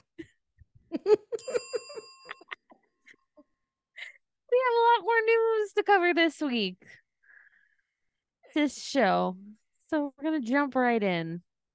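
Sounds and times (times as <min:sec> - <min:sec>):
speech: 0:01.0 - 0:01.7, 0:05.2 - 0:07.0, 0:08.5 - 0:11.5
bright clear notification bell ding: 0:01.4 - 0:02.6.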